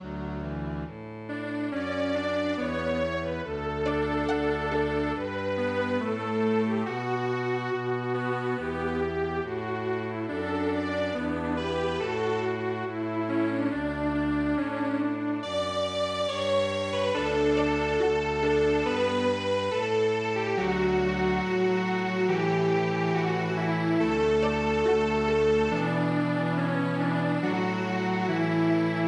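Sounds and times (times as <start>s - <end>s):
string quartet playing: 0.0s - 29.0s.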